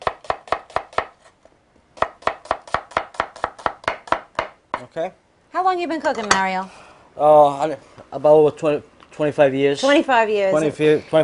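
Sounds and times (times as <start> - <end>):
knife chopping an onion into thick slices on a cutting board: 0.0 - 1.3, 2.0 - 4.9
speech: 4.8 - 11.2.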